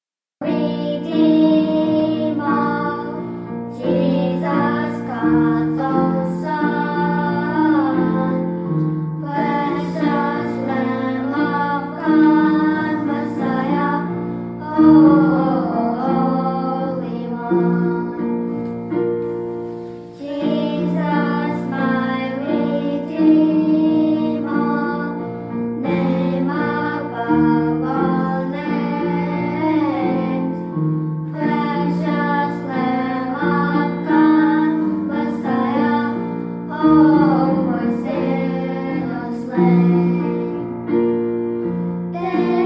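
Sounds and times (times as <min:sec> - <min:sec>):
children singing a gospel hymn: 0:00.4 - 0:18.6, 0:19.2 - 0:41.1, 0:41.8 - 0:42.6.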